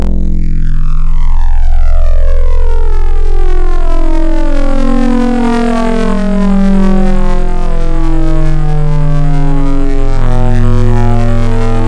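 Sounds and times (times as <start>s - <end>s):
hyper wavetable synth: 0.0s - 11.8s.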